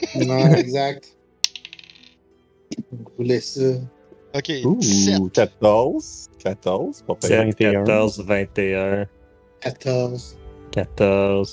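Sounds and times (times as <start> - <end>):
laughter: 0.0 - 0.9
speech: 0.0 - 1.2, 2.7 - 11.5
physical dice rolled for a group stealth check on a hard tabletop: 1.4 - 2.2.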